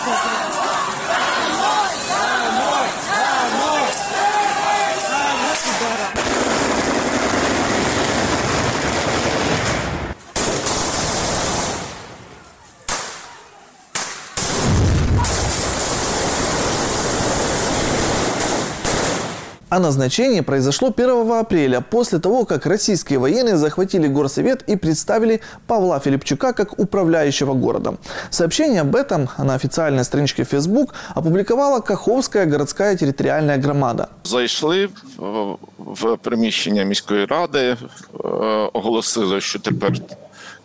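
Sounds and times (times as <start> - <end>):
protest crowd shouting: 0.0 - 8.4, 12.3 - 14.0
grenade blasts dispersing a protest crowd: 5.5 - 19.6
rapid gunfire bursts at a protest: 6.2 - 12.3, 12.9 - 19.6
speech: 19.8 - 40.6.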